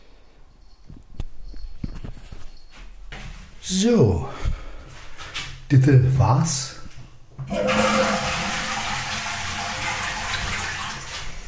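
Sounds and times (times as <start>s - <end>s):
speech: 3.7s - 4.4s, 5.7s - 6.8s
water running into a sink: 7.5s - 11.4s.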